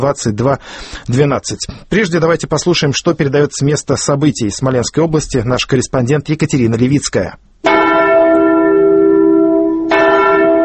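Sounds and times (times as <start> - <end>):
speech: 0.0 - 7.4
large church bell tolling mournfully: 7.6 - 10.6.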